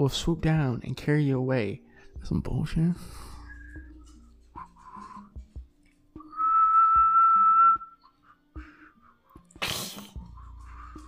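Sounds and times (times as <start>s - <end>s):
speech: 0.0s - 3.3s
soft breathy puffs: 3.0s - 5.7s, 8.0s - 11.0s
loud steady whistled note: 6.2s - 8.1s.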